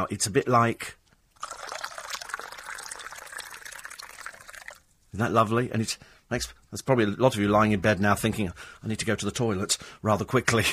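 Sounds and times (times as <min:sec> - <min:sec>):
speech: 0:00.0 - 0:01.6, 0:05.2 - 0:10.7
fizzy drink pouring into a glass: 0:01.4 - 0:04.9.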